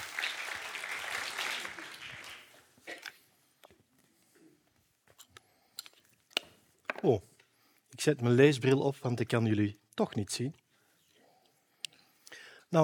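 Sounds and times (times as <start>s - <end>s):
audience applause in a lecture hall: 0.0s - 2.6s
speech: 7.0s - 7.3s, 8.0s - 10.6s.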